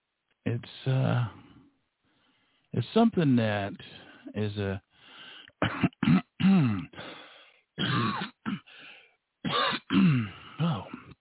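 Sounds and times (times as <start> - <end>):
speech: 0.5 - 1.4, 2.7 - 4.9, 6.4 - 7.0
person clearing throat: 5.6 - 7.0, 7.8 - 8.7, 9.5 - 11.2.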